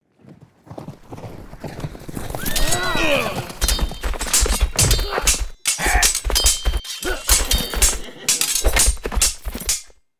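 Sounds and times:
mounted knight duel sword strikes and impacts: 2.5s - 10.0s.

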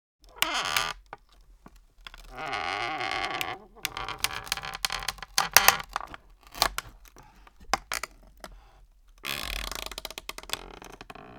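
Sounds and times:
wooden chair creaking: 0.2s - 11.3s.

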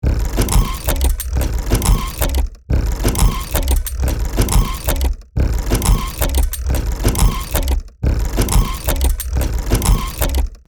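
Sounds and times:
steampunk machinery running: 0.0s - 10.6s.

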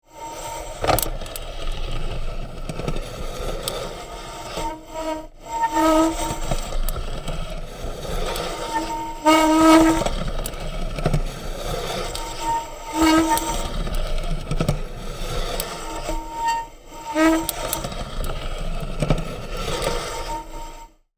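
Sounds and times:
rusty bicycle gears grinding slowly: 0.1s - 20.9s.

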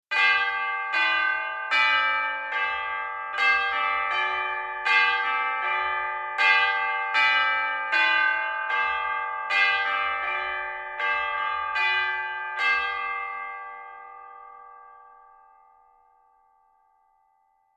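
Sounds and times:
melodic church bells: 0.1s - 17.7s.

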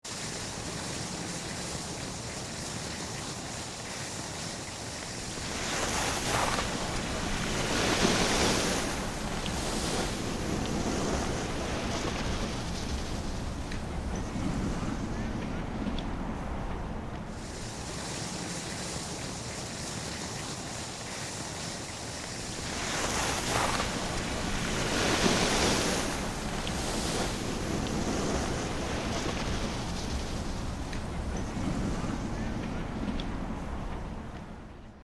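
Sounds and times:
ski slope ambience mid slope: 0.0s - 35.0s.

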